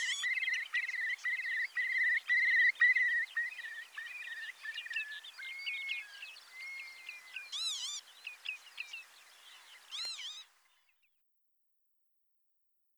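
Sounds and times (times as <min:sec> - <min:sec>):
curlew whistled calls: 0:00.0 - 0:09.1, 0:09.9 - 0:10.5.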